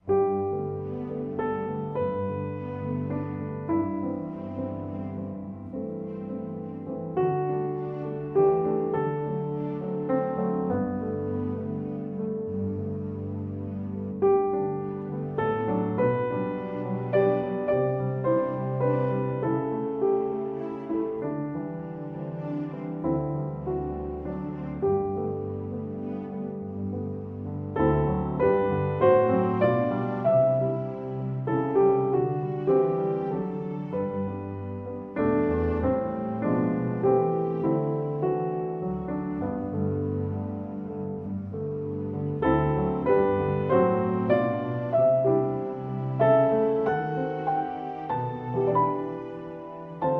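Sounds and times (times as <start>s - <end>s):
lullaby with strings: 0.0s - 50.1s.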